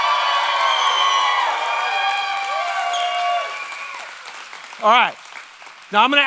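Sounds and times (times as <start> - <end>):
large crowd screaming and cheering loudly: 0.0 - 4.6
applause: 0.0 - 6.2
speech: 4.8 - 5.2, 5.9 - 6.2.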